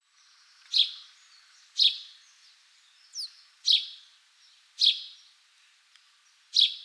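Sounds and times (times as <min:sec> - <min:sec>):
House sparrow Passer domesticus chirping: 0:00.6 - 0:02.2, 0:03.1 - 0:04.0, 0:04.8 - 0:05.3, 0:06.5 - 0:06.8.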